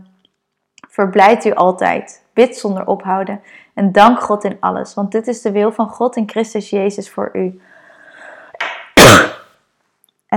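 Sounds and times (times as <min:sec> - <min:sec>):
speech: 0:00.9 - 0:07.8
person coughing: 0:09.0 - 0:09.4.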